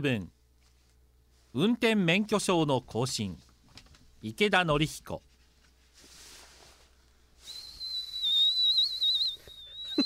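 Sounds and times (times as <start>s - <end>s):
speech: 0.0s - 0.4s, 1.5s - 3.5s, 4.2s - 5.3s
person whistling: 7.4s - 10.0s.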